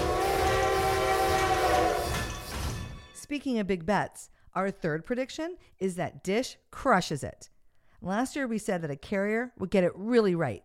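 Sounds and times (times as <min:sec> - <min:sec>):
train horn: 0:00.0 - 0:02.6
speech: 0:03.3 - 0:10.6.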